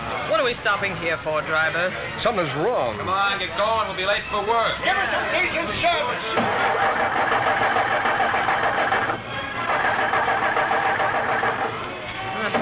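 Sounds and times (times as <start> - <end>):
speech: 0.5 - 7.9
car engine sputtering and failing to start with an empty fuel tank: 6.2 - 12.6.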